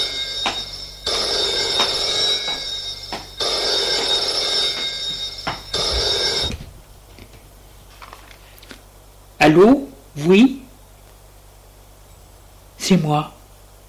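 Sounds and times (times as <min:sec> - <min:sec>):
telephone on a small secretary desk ringing: 0:00.0 - 0:06.8
speech: 0:09.5 - 0:10.6, 0:12.9 - 0:13.4.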